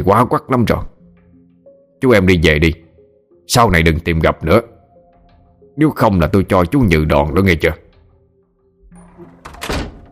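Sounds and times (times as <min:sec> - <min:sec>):
speech: 0:00.0 - 0:00.9, 0:02.0 - 0:02.8, 0:03.5 - 0:04.7, 0:05.8 - 0:07.8
door slamming shut with heavy thunk and rattle: 0:08.9 - 0:10.1.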